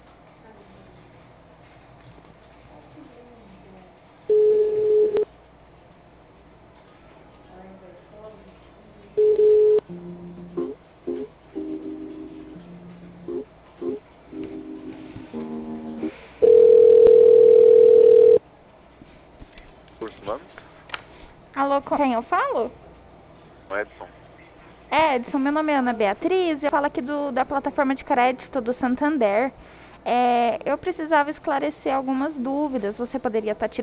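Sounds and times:
telephone line tones: 0:04.3 - 0:05.3, 0:09.2 - 0:09.9, 0:16.4 - 0:18.4
telephone keypad tones dialing an extension: 0:16.4 - 0:18.4
speech: 0:21.8 - 0:22.8, 0:25.0 - 0:33.8.

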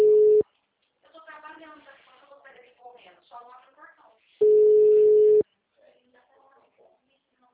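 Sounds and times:
ringback tone of an outgoing phone call: 0:00.0 - 0:00.4, 0:04.4 - 0:05.4.

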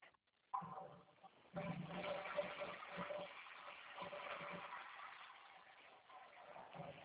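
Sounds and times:
water for cleaning gushing from a tap: 0:01.5 - 0:07.0.

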